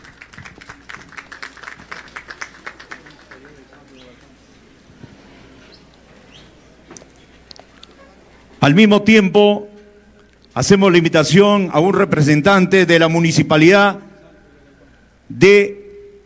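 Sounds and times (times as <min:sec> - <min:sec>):
audience applause: 0:00.0 - 0:04.4
speech: 0:08.6 - 0:09.7, 0:10.6 - 0:14.0, 0:15.3 - 0:15.8.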